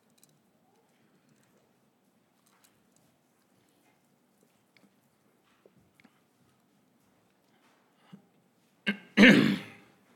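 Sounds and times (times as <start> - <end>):
person clearing throat: 8.9 - 9.9.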